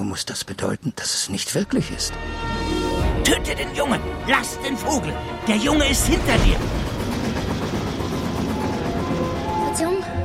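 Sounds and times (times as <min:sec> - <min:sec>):
speech: 0:00.1 - 0:06.8
rumble inside a full moving passenger train: 0:03.9 - 0:10.2.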